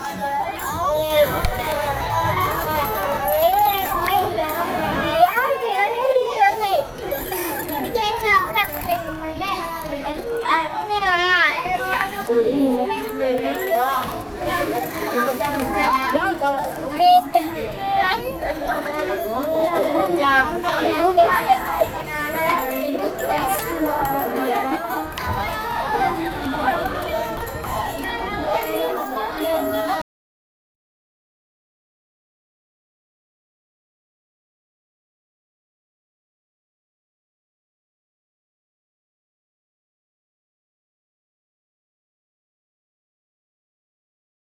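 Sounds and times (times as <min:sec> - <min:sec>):
children's classroom ambience in India: 0:00.0 - 0:30.0.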